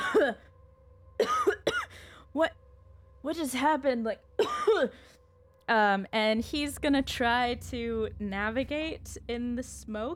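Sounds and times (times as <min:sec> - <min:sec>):
voice imitating coughing for a character caught in smoke: 0:00.0 - 0:00.4, 0:04.4 - 0:05.0
low steady hum: 0:00.0 - 0:10.1
speech: 0:00.2 - 0:00.5, 0:01.2 - 0:01.5, 0:02.4 - 0:02.6, 0:03.2 - 0:05.1, 0:05.7 - 0:10.1.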